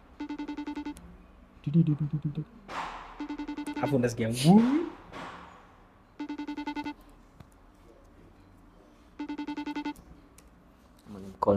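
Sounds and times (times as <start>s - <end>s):
FaceTime call ringing tone: 0.0s - 1.0s, 3.2s - 4.0s, 6.2s - 7.0s, 9.2s - 10.0s
speech: 1.6s - 2.8s, 3.8s - 5.0s.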